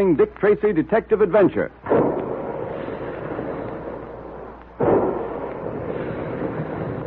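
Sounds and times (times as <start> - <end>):
speech: 0.0 - 1.8
big guns firing: 1.8 - 7.0.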